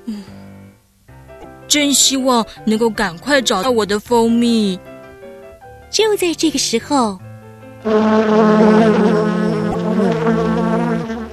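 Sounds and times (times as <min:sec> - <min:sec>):
speech: 0:01.7 - 0:04.9, 0:05.9 - 0:07.2, 0:07.8 - 0:09.4, 0:10.0 - 0:10.6
bee buzzing as it flies in through a window: 0:07.8 - 0:11.3.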